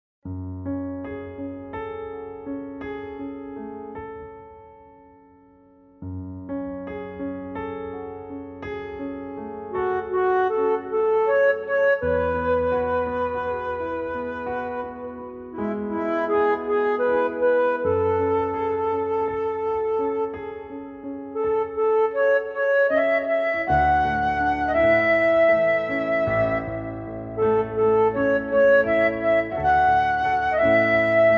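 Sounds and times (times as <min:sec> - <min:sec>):
flute in F minor: 0:09.0 - 0:31.3.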